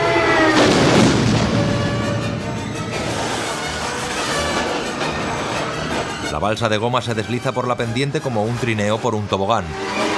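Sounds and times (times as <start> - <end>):
airplane exploding against a snowy mountainside: 0.1 - 5.6
speech: 6.4 - 10.0.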